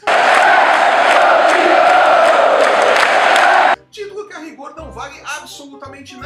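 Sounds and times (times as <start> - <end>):
stadium crowd of football fans chanting a championship chant: 0.0 - 3.8.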